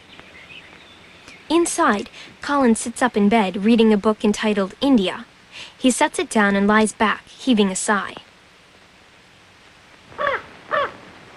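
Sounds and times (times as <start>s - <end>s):
speech: 1.5s - 8.2s
raven cawing: 10.1s - 11.1s.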